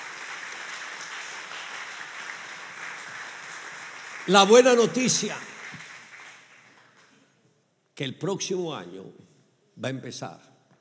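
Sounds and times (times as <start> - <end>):
crowd applauding: 0.0 - 7.1
speech: 4.2 - 5.5, 8.0 - 10.5.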